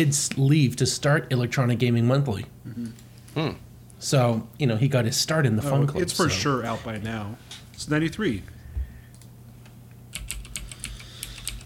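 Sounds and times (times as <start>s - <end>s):
speech: 0.0s - 8.6s
low steady hum: 0.0s - 11.6s
typing on a mechanical computer keyboard: 10.1s - 11.6s.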